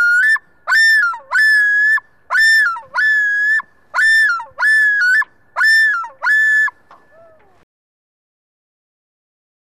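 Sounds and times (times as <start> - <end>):
loon calling: 0.0 - 7.6.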